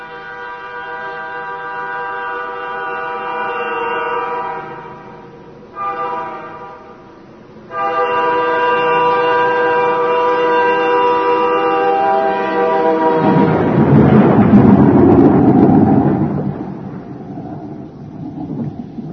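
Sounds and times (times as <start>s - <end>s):
steady droning howling tone of a storm: 0.0s - 19.1s
loud deep roll of thunder: 12.4s - 19.1s.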